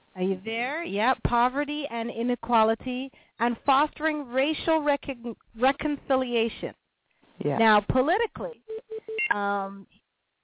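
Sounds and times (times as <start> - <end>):
speech: 0.2 - 6.8, 7.4 - 10.0
beeping on a telephone line during a call: 8.7 - 9.4.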